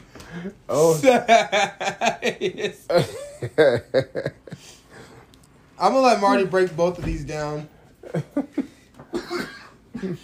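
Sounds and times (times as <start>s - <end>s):
speech: 0.3s - 4.7s, 5.8s - 9.4s, 10.0s - 10.2s
harsh coughing fit: 9.0s - 10.2s.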